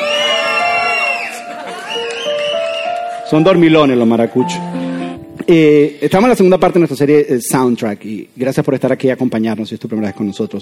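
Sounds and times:
large audience shouting and cheering loudly: 0.0 - 3.2
speech: 3.3 - 4.8, 5.5 - 10.6.

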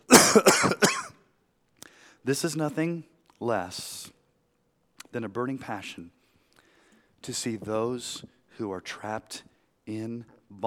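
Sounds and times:
person coughing: 0.1 - 1.2
speech: 0.4 - 0.9, 2.3 - 4.2, 5.2 - 6.2, 7.2 - 10.6.

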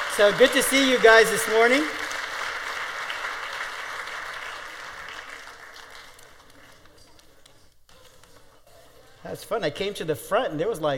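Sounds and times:
large audience at a church worship service applauding: 0.0 - 7.3
speech: 0.2 - 2.0, 9.2 - 10.9.

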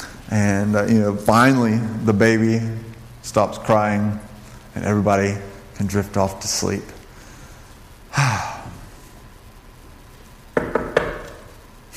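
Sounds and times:
speech: 0.3 - 7.0
sleepy sigh or breath: 8.1 - 8.8
neighbor knocking on a door at night: 10.6 - 11.4.

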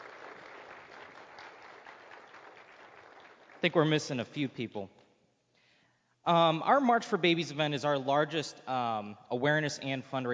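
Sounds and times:
room full of people applauding: 0.0 - 3.8
speech: 3.6 - 5.0, 6.3 - 10.3.

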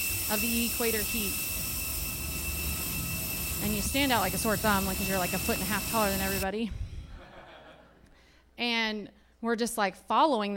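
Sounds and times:
jet engine roaring on airport tarmac: 0.0 - 6.5
speech: 0.3 - 1.5, 3.6 - 6.8, 8.6 - 10.5
laughter: 7.1 - 8.0.

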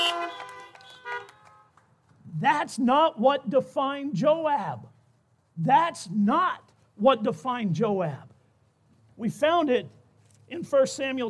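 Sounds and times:
car horns honking: 0.0 - 1.8
speech: 2.4 - 4.9, 5.6 - 8.3, 9.2 - 11.2.

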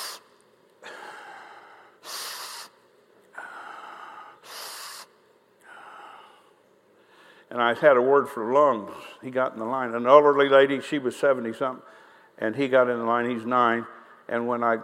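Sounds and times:
person imitating a boy's laboured gasping breaths: 0.0 - 7.5
speech: 7.5 - 14.8.

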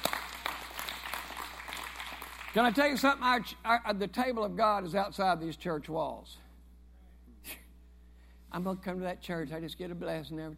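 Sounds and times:
church audience clapping during a sermon: 0.0 - 3.1
speech: 2.6 - 6.4, 8.5 - 10.5.

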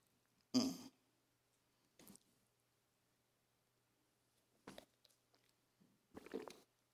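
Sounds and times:
person gulping water: 6.2 - 6.6
person slurping a drink of water: 6.2 - 6.7.

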